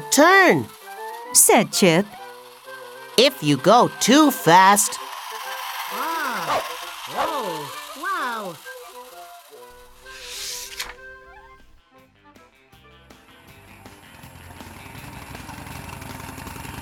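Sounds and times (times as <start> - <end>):
speech: 0.2 - 2.2, 3.2 - 5.1
small scooter engine buzzing and whining: 5.0 - 8.9, 14.2 - 16.7.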